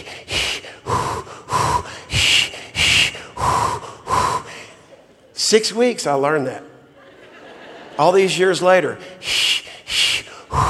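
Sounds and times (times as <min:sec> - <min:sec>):
imitated rhythmic labour breathing technique: 0:00.0 - 0:05.0, 0:09.0 - 0:10.6
speech: 0:05.5 - 0:06.7, 0:08.0 - 0:09.2
laughter: 0:06.9 - 0:08.4.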